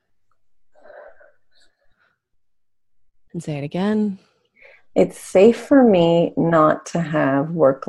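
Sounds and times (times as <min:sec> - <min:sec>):
deep breath with a faintly wheezy inhale: 0:00.6 - 0:02.4, 0:04.4 - 0:05.0
speech: 0:03.4 - 0:04.3, 0:05.0 - 0:07.8.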